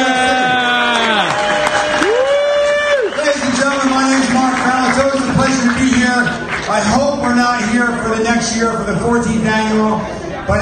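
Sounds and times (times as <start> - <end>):
crowd cheers and whoops: 0.0 - 3.4
crowd applauding at a fundraising event: 0.0 - 7.4
speech: 8.4 - 10.6.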